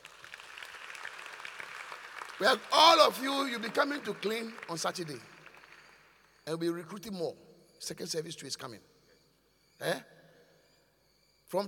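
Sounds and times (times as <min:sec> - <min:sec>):
audience applauding: 0:00.0 - 0:06.2
speech: 0:02.4 - 0:05.3, 0:06.4 - 0:08.9, 0:09.8 - 0:10.1.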